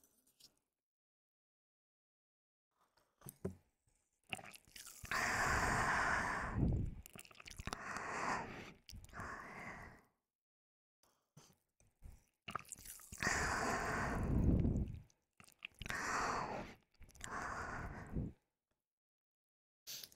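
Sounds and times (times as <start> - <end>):
wet ASMR mouth sounds of drinking into the ear: 4.3 - 8.1, 12.5 - 17.8.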